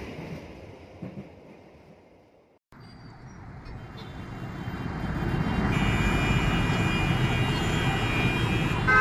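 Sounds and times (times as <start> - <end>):
Jakarta city street traffic of motorbikes and cars with engines rumbling: 3.2 - 8.9.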